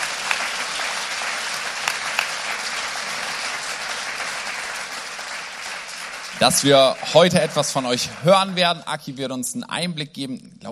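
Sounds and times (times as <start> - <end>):
audience applause at a gathering: 0.0 - 9.2
speech: 6.4 - 10.6.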